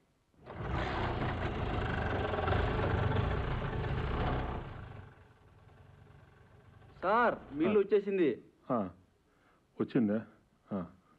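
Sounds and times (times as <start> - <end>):
vehicle engine starting and idling: 0.4 - 7.6
speech: 7.0 - 9.0, 9.8 - 11.0.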